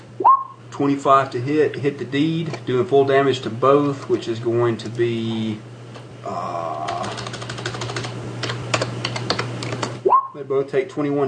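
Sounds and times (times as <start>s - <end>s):
speech: 0.2s - 7.2s, 10.4s - 11.2s
typing on a computer keyboard: 6.8s - 10.0s.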